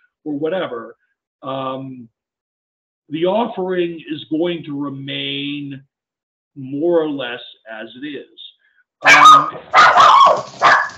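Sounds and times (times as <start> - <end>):
speech: 0.2 - 2.2, 3.1 - 5.9, 6.6 - 8.4, 9.0 - 10.9
excited puppy barking: 9.0 - 10.9.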